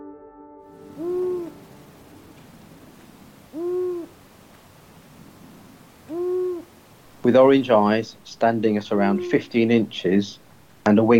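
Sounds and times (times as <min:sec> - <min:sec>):
long-eared owl hooting: 0:00.8 - 0:07.4, 0:08.1 - 0:10.7
speech: 0:07.2 - 0:11.1.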